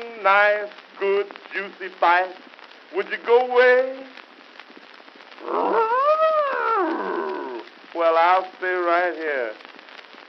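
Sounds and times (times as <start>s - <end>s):
speech: 0.2s - 4.2s, 5.4s - 5.8s, 8.0s - 9.7s
bear growling: 5.4s - 7.7s.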